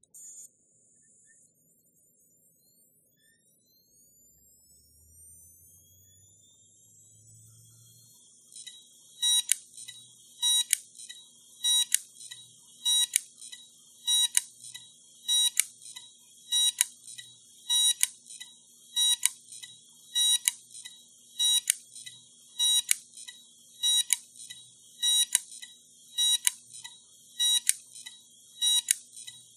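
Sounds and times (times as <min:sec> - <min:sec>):
Toshiba hard drive clicking: 0:08.6 - 0:29.5.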